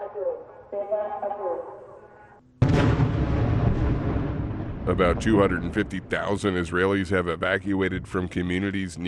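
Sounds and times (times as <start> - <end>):
speech: 0.7 - 1.9, 4.9 - 9.0
very loud explosive boom with roaring rumble: 2.6 - 6.7.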